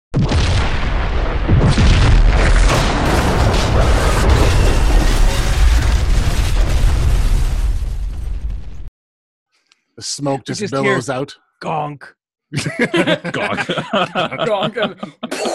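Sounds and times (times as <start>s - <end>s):
plasma grenade explosion heard from outside: 0.2s - 8.9s
speech: 10.0s - 15.5s
laughter: 12.5s - 15.5s.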